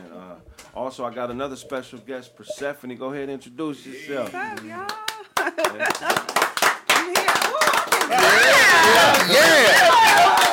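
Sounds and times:
speech: 0.4s - 6.4s
small group applauding a guest: 4.2s - 10.5s.

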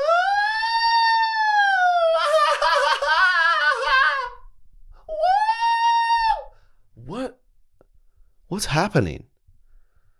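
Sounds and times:
voice imitating a group's woo cheer: 0.0s - 4.4s, 5.1s - 6.5s
speech: 8.5s - 9.3s.

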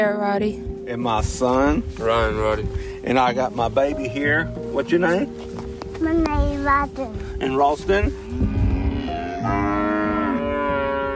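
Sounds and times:
speech: 0.0s - 8.5s, 9.4s - 9.8s
mother cows mooing on a cattle ranch in Texas: 8.1s - 11.1s.

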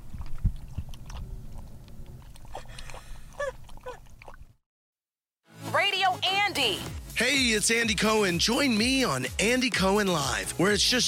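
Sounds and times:
dog drinking water inside a car: 0.0s - 4.6s
speech: 6.6s - 11.0s.

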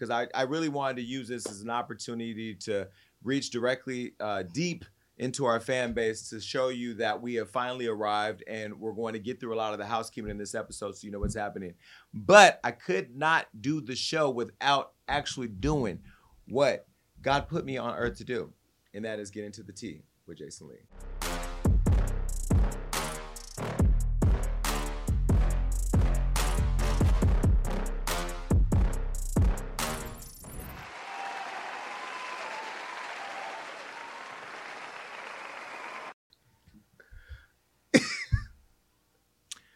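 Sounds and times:
speech: 0.0s - 21.4s
punchy rhythmic music: 20.9s - 30.8s
audience applause: 30.8s - 36.2s
coughs and throat clears: 37.9s - 38.6s.

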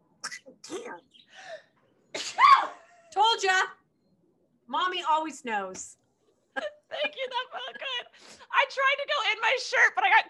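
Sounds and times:
speech: 0.6s - 1.6s, 3.2s - 3.8s, 4.7s - 6.0s, 6.6s - 10.2s
loud sneeze: 2.2s - 2.8s.

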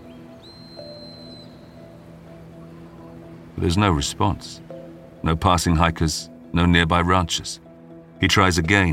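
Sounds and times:
emergency whistle blown by a man on a hiking trail: 0.4s - 2.0s
speech: 3.6s - 7.6s, 8.2s - 8.9s.

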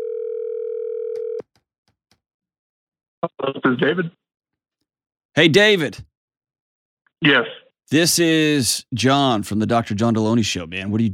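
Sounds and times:
telephone dial tone while a call is dialed: 0.0s - 1.5s
speech: 3.2s - 4.2s, 5.4s - 6.1s, 7.2s - 11.1s.

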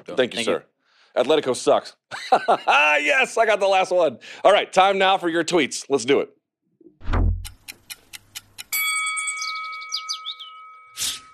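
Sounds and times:
speech: 0.0s - 6.4s
laughter: 2.1s - 3.1s
loud low thump in a clock sound effect: 7.0s - 7.5s
clock ticks in a timer sound effect: 7.4s - 8.8s
bright sustained chime with shimmering tail: 8.7s - 11.3s.

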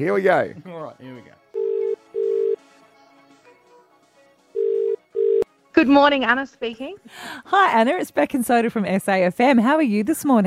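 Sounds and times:
speech: 0.0s - 1.4s, 5.8s - 10.4s
soft music: 0.0s - 10.4s
telephone ringback tone: 1.6s - 2.6s, 4.6s - 5.4s.

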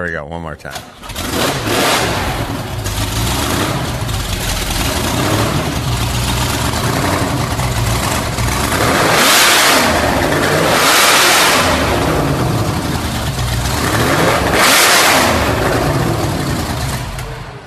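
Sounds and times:
speech: 0.0s - 2.5s
race car engine with open header idling and revving indoors: 0.9s - 17.6s.

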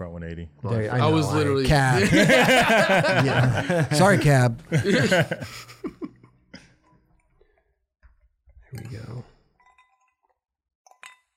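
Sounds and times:
speech: 0.2s - 5.8s
laughter: 1.1s - 6.3s
glass or metal clinking: 9.6s - 11.3s.

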